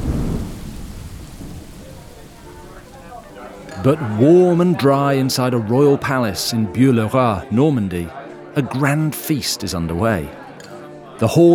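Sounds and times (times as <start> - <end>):
deep rumble of thunder: 0.0 - 3.4
steady heavy rain: 0.0 - 4.2
speech: 3.8 - 10.4, 11.2 - 11.5.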